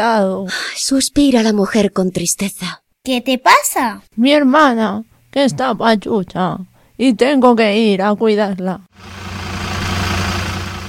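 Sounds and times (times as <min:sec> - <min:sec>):
speech: 0:00.0 - 0:09.2
bus engine idling: 0:09.0 - 0:10.8.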